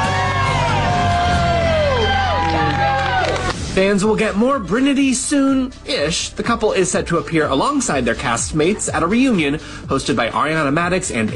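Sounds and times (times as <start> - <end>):
audience cheering and applauding the winners of a reality TV show: 0.0 - 3.8
speech: 3.8 - 11.3.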